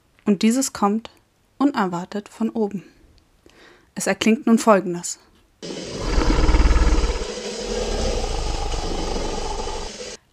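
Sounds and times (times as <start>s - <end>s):
speech: 0.3s - 3.0s, 4.0s - 5.9s
deep creature roar blending whale song, walrus call and Tyrannosaurus rex bellow: 5.6s - 10.2s.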